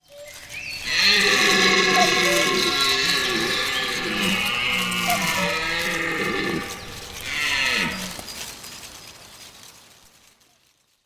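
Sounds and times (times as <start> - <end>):
deer: 0.2 - 8.6.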